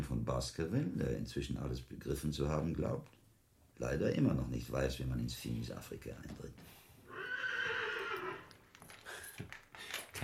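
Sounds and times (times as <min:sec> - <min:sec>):
speech: 0:00.3 - 0:03.2, 0:03.8 - 0:06.8, 0:09.4 - 0:10.2
stabled horse whinnying: 0:07.1 - 0:08.6
hooves knocking and shuffling: 0:08.0 - 0:10.2.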